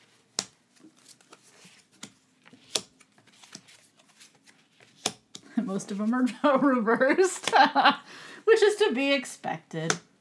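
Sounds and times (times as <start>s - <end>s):
tarot cards sliding from a deck: 0.1s - 5.5s
tarot card clicks and snaps: 0.3s - 3.8s, 4.9s - 5.4s
speech: 5.7s - 10.1s.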